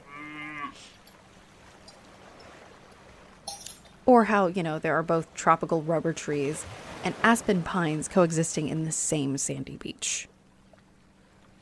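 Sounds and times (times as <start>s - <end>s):
cow mooing: 0.0s - 0.9s
outdoor noise: 0.0s - 11.5s
speech: 4.1s - 10.4s.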